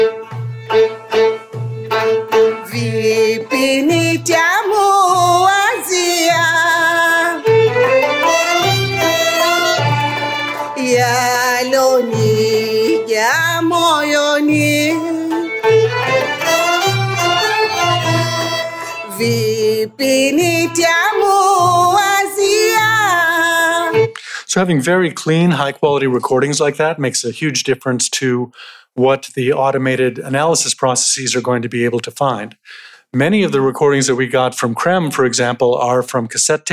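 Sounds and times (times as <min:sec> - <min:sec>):
Taarab ensemble music field recording in Zanzibar: 0:00.0 - 0:25.1
speech: 0:24.6 - 0:36.7.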